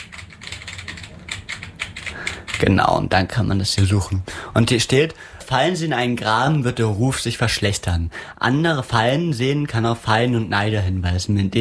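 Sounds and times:
computer keyboard typing a search term into a website: 0.0s - 2.9s
speech: 2.6s - 11.6s.

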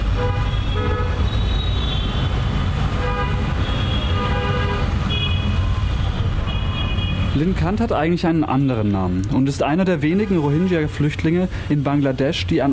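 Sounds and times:
car horns honking in city traffic: 0.0s - 5.7s, 6.4s - 7.4s
dense city traffic engine rumble: 0.0s - 12.7s
speech: 7.4s - 12.7s.

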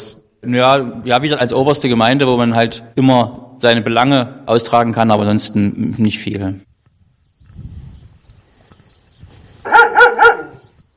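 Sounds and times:
speech: 0.4s - 6.7s
watchful dogs barking loudly: 9.6s - 10.7s.

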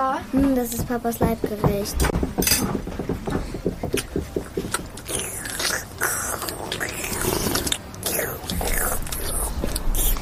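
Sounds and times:
speech: 0.0s - 3.4s
chewing sounds: 4.0s - 10.2s
noisy wet slurping of lentil soup: 5.0s - 10.2s.

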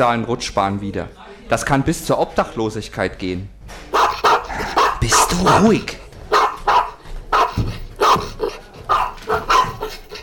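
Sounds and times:
speech: 0.0s - 3.9s, 5.0s - 6.0s
dog barking loudly: 3.9s - 10.2s.

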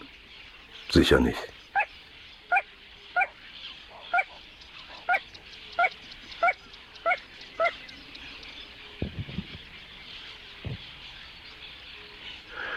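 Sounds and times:
speech: 0.9s - 1.6s
little crake calling short sharp yelping notes: 1.7s - 7.8s.

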